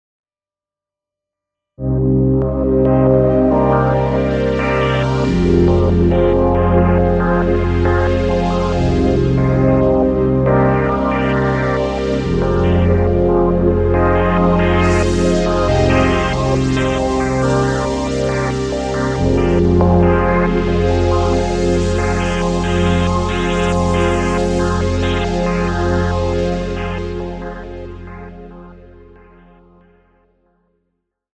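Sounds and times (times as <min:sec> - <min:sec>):
vintage filtered external sound: 0:01.8 - 0:29.3.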